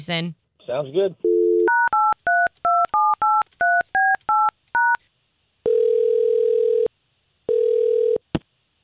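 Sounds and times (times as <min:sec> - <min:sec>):
speech: 0:00.0 - 0:01.3
telephone ringing tones: 0:01.2 - 0:05.0, 0:05.6 - 0:06.9, 0:07.5 - 0:08.2.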